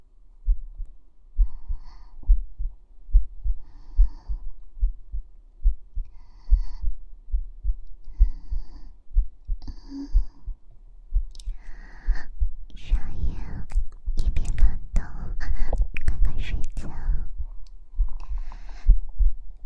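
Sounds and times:
human heartbeat heard with a foot pressed against the chest: 0.4s - 19.6s
soft breathing: 1.3s - 13.8s, 14.6s - 15.9s, 16.8s - 19.6s.

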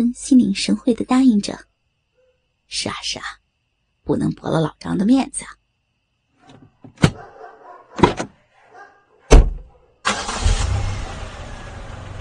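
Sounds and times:
speech: 0.0s - 1.7s, 2.7s - 3.4s, 4.1s - 5.6s
car doors slamming: 8.0s - 8.3s, 9.3s - 9.7s
car engine starting and driving away: 9.3s - 12.1s.

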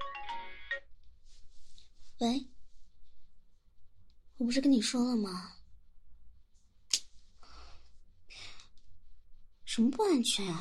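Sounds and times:
mobile phone ringtone for incoming call: 0.0s - 0.9s
faint room hiss: 0.0s - 10.5s
speech: 2.2s - 2.5s, 4.4s - 5.6s, 9.8s - 10.5s.

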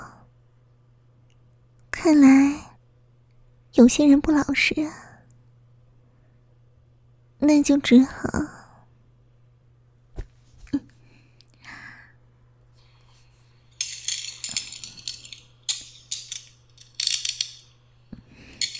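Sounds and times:
faint steady hum: 0.0s - 18.7s
speech: 2.0s - 2.6s, 3.8s - 5.1s, 7.4s - 8.6s
handcuffs ratcheting shut during an interrogation: 13.8s - 17.7s, 18.6s - 18.7s
metallic clicks: 13.8s - 17.8s, 18.5s - 18.7s.

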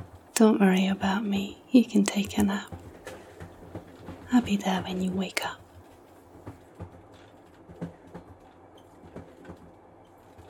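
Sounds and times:
long passenger train rumbling on tracks heard from inside a carriage: 0.0s - 10.4s
speech: 0.4s - 2.8s, 4.3s - 5.6s
train wheels clacking and knocking: 2.2s - 10.4s.

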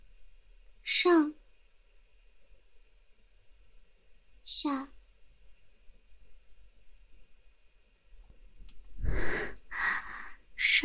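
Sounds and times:
faint low rumble: 0.0s - 10.8s
speech: 1.0s - 1.4s, 4.6s - 5.0s
heavy breathy huffs: 9.0s - 10.4s.

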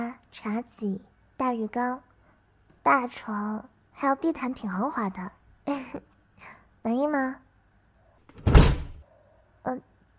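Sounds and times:
speech: 0.3s - 2.1s, 2.8s - 7.4s, 9.7s - 9.9s
door closing thud in a room: 8.3s - 9.0s.

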